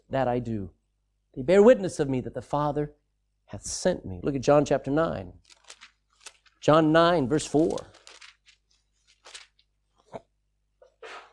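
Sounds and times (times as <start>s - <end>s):
speech: 0.1s - 5.8s, 6.6s - 8.0s
audience rustling and shuffling in a large room: 5.4s - 10.0s
person sneezing in an audience: 11.0s - 11.3s.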